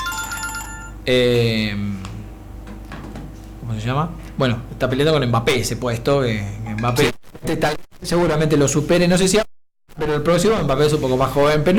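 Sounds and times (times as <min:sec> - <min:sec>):
telephone ringing for incoming calls: 0:00.0 - 0:01.1
speech: 0:01.0 - 0:02.1, 0:03.7 - 0:11.7.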